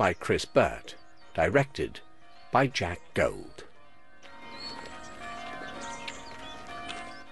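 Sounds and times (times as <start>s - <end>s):
speech: 0.0s - 3.7s
church bells ringing: 0.0s - 7.3s.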